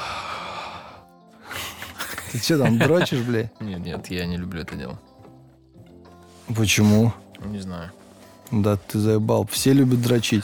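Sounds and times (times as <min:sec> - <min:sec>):
heavy breathing into the microphone: 0:00.0 - 0:02.0
laughter: 0:01.6 - 0:03.5
speech: 0:02.3 - 0:05.1, 0:06.5 - 0:10.4.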